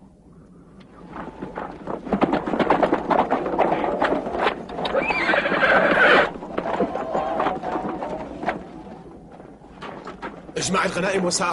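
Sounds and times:
horse hooves clopping: 0:00.6 - 0:11.5
horse whinnying loudly: 0:04.8 - 0:06.3
speech: 0:10.6 - 0:11.5.

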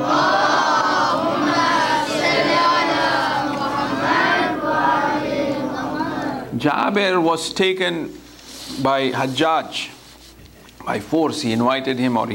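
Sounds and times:
congregation loudly reciting salawat in unison: 0:00.0 - 0:06.6
speech: 0:06.6 - 0:10.0, 0:10.8 - 0:12.3.

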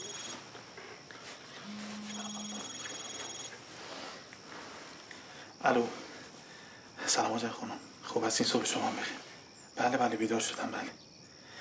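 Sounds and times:
hiss: 0:00.0 - 0:11.5
brief low hum: 0:01.6 - 0:02.8
mobile phone ringing: 0:01.6 - 0:03.6
speech: 0:05.6 - 0:06.0, 0:07.1 - 0:11.1.

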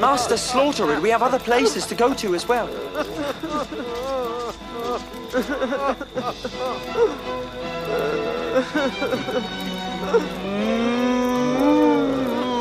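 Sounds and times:
speech: 0:00.0 - 0:10.8, 0:11.6 - 0:12.0
animal noises: 0:00.6 - 0:12.5
laughter: 0:01.5 - 0:10.7
cow mooing: 0:07.8 - 0:08.6, 0:09.7 - 0:12.5.

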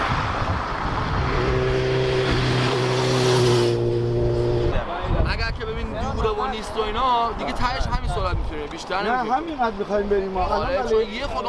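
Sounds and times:
car engine roaring: 0:00.0 - 0:05.3
constant road noise: 0:00.0 - 0:11.4
speech: 0:06.1 - 0:11.4.

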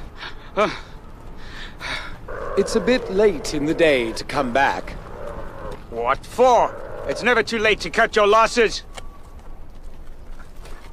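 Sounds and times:
speech: 0:00.6 - 0:00.9, 0:02.6 - 0:04.9, 0:06.0 - 0:08.9
horses galloping: 0:02.2 - 0:10.9.

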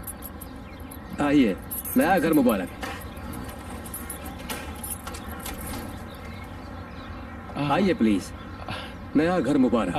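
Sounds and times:
keys jangling: 0:00.0 - 0:06.1
speech: 0:01.2 - 0:02.8, 0:07.6 - 0:08.4, 0:09.2 - 0:09.9.

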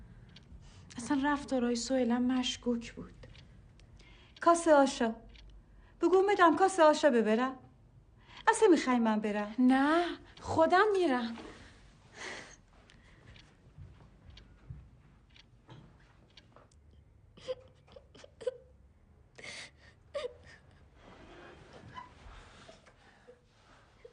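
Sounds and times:
speech: 0:01.0 - 0:03.2, 0:04.4 - 0:05.2, 0:06.0 - 0:07.6, 0:08.4 - 0:11.5
person crying and whimpering: 0:17.4 - 0:18.7, 0:19.4 - 0:20.6.

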